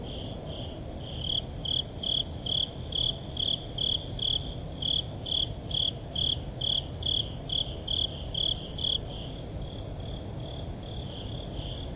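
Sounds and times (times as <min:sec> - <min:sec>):
Japanese burrowing cricket chirping: 0:00.0 - 0:11.9.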